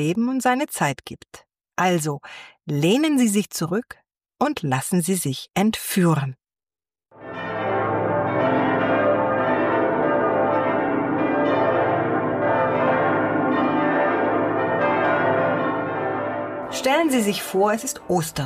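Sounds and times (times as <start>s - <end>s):
speech: 0.0s - 6.4s, 16.8s - 18.4s
church bells ringing in an overlapping peal: 7.2s - 18.4s.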